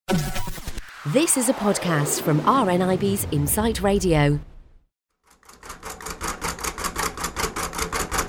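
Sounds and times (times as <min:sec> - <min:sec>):
speech: 0:01.0 - 0:04.5
someone typing on a braille writing machine: 0:05.4 - 0:08.2.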